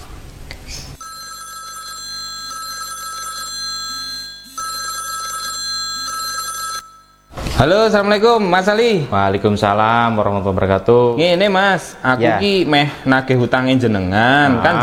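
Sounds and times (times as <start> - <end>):
telephone ringing while a call is being placed: 1.0 - 7.6
speech: 7.6 - 14.8.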